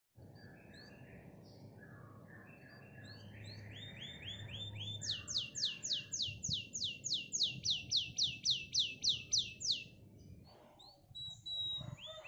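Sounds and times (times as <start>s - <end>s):
canary singing a rich varied song: 2.6s - 12.2s.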